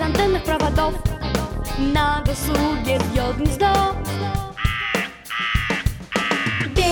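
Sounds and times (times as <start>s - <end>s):
speech: 0.5s - 1.2s, 1.8s - 4.3s
crow cawing: 4.6s - 6.8s.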